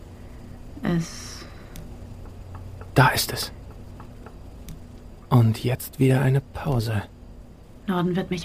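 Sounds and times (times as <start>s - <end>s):
speech: 0.9s - 1.3s, 3.0s - 3.6s, 5.3s - 7.1s, 7.9s - 8.4s
rapid knocking with sharp taps and clicks: 2.2s - 3.0s, 3.6s - 4.5s.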